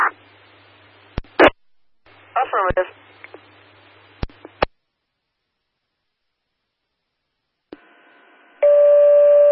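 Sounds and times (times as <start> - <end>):
speech: 2.5 - 3.1
sharp radio clicks: 4.2 - 4.8
dispatch paging tones for manpower callout: 8.6 - 9.5.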